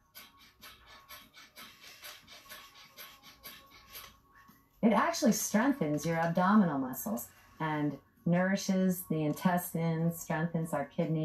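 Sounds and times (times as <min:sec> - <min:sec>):
rapid rhythmic breathing forced through the nose, breath of fire: 0:00.0 - 0:04.2
speech: 0:04.8 - 0:11.2.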